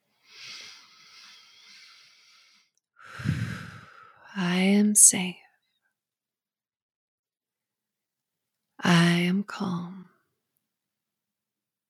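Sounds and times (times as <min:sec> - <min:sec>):
deep relaxing breath during a guided hypnosis session: 0:00.2 - 0:04.3
speech: 0:04.4 - 0:05.4, 0:09.5 - 0:09.9.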